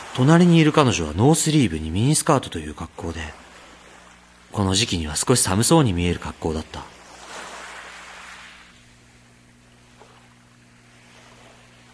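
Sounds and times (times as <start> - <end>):
low constant hum: 0.0 - 11.9
ocean wave surging and receding into surf: 0.0 - 11.9
speech: 0.2 - 3.4, 4.5 - 7.0.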